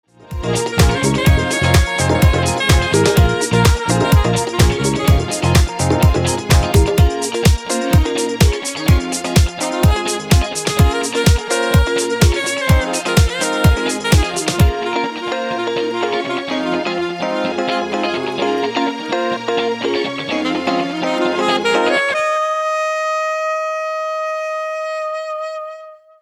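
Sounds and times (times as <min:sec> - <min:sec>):
saxophone playing: 0:00.2 - 0:26.2
dj mix: 0:00.3 - 0:14.8.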